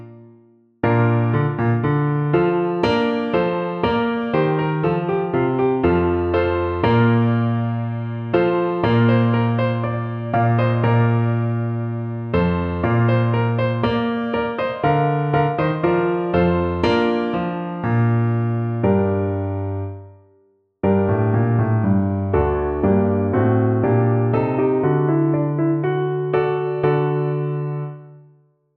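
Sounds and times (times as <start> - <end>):
fast piano playing: 0.9 - 19.9, 20.9 - 28.0.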